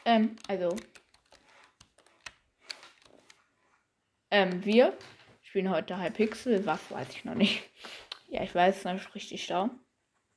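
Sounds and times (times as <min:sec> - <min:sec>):
computer keyboard typing: 0:00.0 - 0:03.4, 0:04.4 - 0:05.0
speech: 0:00.1 - 0:01.0, 0:04.3 - 0:09.8.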